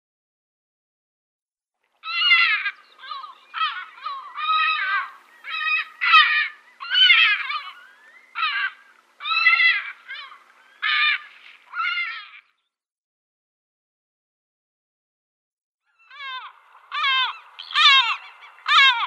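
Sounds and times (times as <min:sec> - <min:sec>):
Lesser black-backed gull giving short nasal calls: 0:02.0 - 0:12.6, 0:15.9 - 0:19.0.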